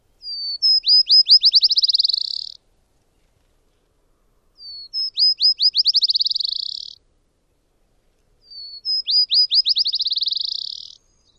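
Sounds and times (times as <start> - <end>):
Black-chinned Sparrow singing: 0.1 - 2.6, 4.6 - 7.0, 8.4 - 11.3.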